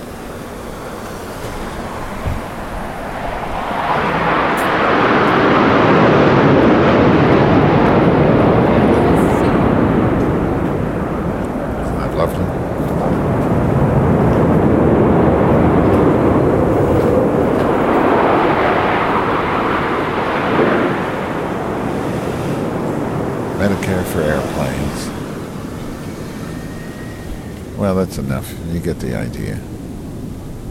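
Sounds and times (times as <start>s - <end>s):
airplane engine roar passing overhead: 0.0s - 30.6s
speech: 28.2s - 29.6s.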